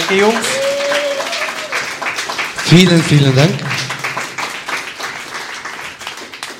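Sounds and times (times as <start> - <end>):
crowd applauding: 0.0 - 6.5
speech: 0.1 - 0.6, 2.7 - 3.8.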